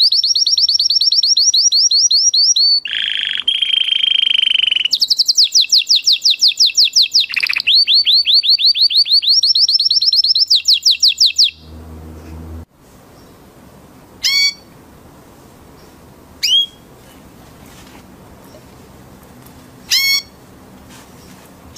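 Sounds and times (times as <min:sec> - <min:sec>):
orange canary lure song of down-slurred whistles: 0:00.0 - 0:11.7, 0:14.2 - 0:14.7, 0:16.4 - 0:16.8, 0:19.9 - 0:20.4.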